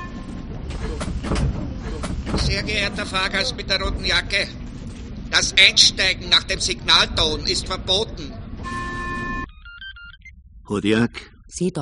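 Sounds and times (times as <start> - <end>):
train departing with low rumble: 0.0 - 8.8
speech: 2.4 - 4.6, 5.3 - 8.4, 10.7 - 11.8.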